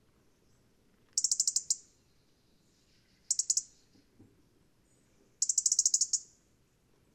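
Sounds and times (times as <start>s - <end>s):
faint low background hiss: 0.0s - 7.1s
European robin Erithacus rubecula ticking: 1.2s - 1.8s, 3.3s - 3.7s, 5.4s - 6.2s.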